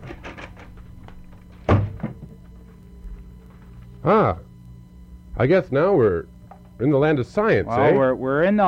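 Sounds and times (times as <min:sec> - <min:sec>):
heavy door thudding shut: 0:01.6 - 0:02.3
speech: 0:04.0 - 0:04.5, 0:05.4 - 0:08.6.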